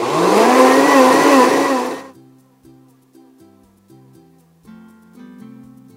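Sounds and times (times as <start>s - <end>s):
blender motor roaring while pulsing a pan-toasted cardamom drink mixture: 0.0s - 2.1s
soft music: 2.1s - 5.9s.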